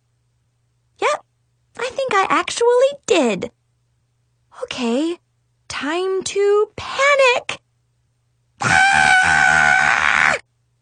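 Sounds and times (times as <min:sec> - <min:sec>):
speech: 0:02.1 - 0:03.6, 0:04.6 - 0:07.6
person screaming: 0:08.6 - 0:10.4.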